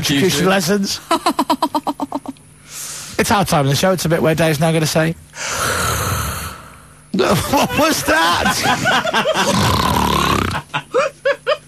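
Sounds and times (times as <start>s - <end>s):
speech: 0.0s - 2.1s, 3.2s - 5.9s, 7.1s - 10.2s
person imitating snoring with a flapping throat from a loose palate: 5.4s - 6.7s, 9.4s - 10.7s
laughter: 7.2s - 9.7s, 10.5s - 11.6s.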